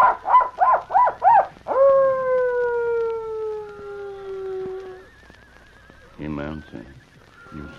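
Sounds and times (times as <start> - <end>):
person imitating coyote call as a signal near a gang's camp: 0.6 - 5.1.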